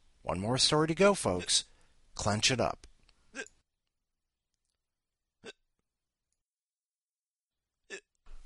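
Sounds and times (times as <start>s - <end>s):
speech: 0.3s - 3.5s
person hiccuping: 3.3s - 3.6s, 5.4s - 5.6s, 7.9s - 8.2s.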